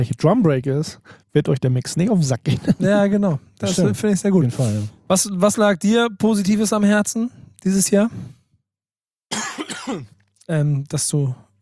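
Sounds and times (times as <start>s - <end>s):
speech: 0.0s - 8.4s, 9.9s - 11.6s
person coughing: 2.5s - 4.0s, 9.3s - 10.1s
voiced sound like talking or throat clearing: 2.6s - 6.8s.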